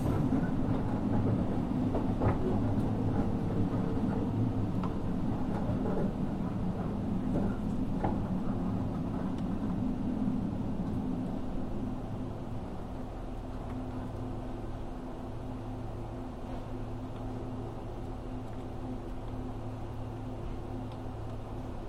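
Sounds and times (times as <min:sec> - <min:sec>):
local one-man train running on rails heard from inside the carriage: 0:00.0 - 0:21.8.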